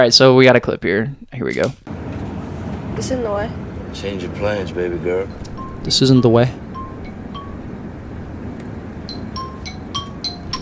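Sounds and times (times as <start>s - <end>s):
speech: 0.0s - 2.0s, 3.0s - 6.6s
steady low rumbling hiss: 0.0s - 10.6s
creepy phone ringtone with eerie high chiming notes: 5.3s - 10.6s.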